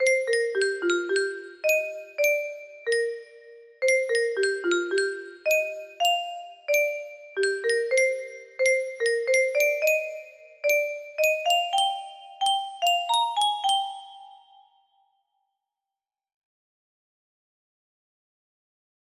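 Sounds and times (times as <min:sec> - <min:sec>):
music box leitmotif melody: 0:00.0 - 0:14.8.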